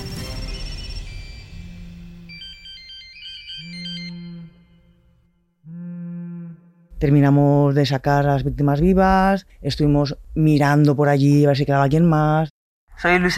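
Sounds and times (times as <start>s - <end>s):
several mobile phone ringtones ringing: 0.1s - 5.1s
speech: 7.0s - 13.3s.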